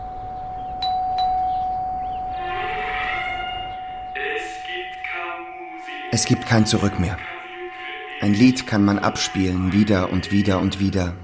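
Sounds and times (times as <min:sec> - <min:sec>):
old doorbell ringing at a worn house facade: 0:00.0 - 0:08.7
speech: 0:06.2 - 0:07.3, 0:08.2 - 0:11.2.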